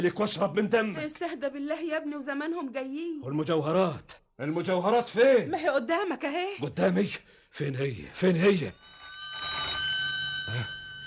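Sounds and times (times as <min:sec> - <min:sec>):
speech: 0:00.0 - 0:09.5
electronic telephone ringing in a dramatized scene: 0:08.5 - 0:11.0.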